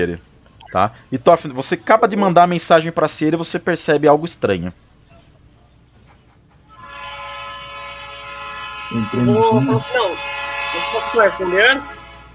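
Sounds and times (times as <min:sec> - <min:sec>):
speech: 0:00.0 - 0:04.9, 0:08.9 - 0:12.0
train horn blast: 0:06.7 - 0:12.3.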